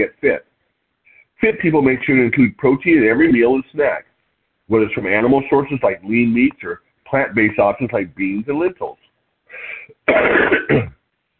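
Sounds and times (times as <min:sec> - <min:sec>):
speech: 0:00.0 - 0:00.5, 0:01.4 - 0:04.1, 0:04.7 - 0:11.0
person coughing: 0:10.1 - 0:11.0.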